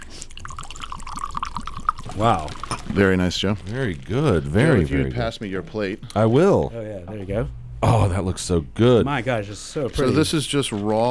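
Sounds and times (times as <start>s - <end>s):
whiskey glugging from a bottle into a glass: 0.0s - 4.7s
speech: 2.2s - 11.0s.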